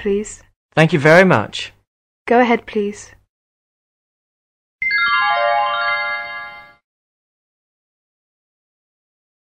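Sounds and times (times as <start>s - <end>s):
speech: 0.0s - 3.2s
telephone ringing tone on the line: 4.8s - 6.8s.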